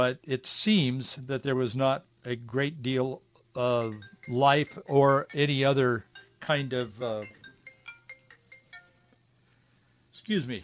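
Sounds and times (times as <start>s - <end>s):
speech: 0.0s - 7.4s, 10.3s - 10.6s
low hum: 0.0s - 10.6s
cell phone ringing in a studio: 3.5s - 9.6s.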